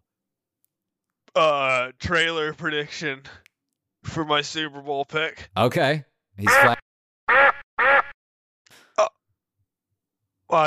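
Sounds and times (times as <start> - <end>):
speech: 1.4 - 3.4, 4.1 - 7.5
duck quacking sound effect: 6.4 - 8.1.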